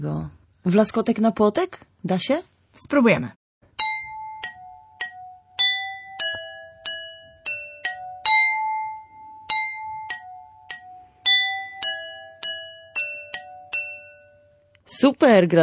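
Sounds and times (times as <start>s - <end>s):
speech: 0.0s - 3.4s, 15.0s - 15.6s
simple tune tapped on tuned drinking glasses: 3.8s - 14.5s.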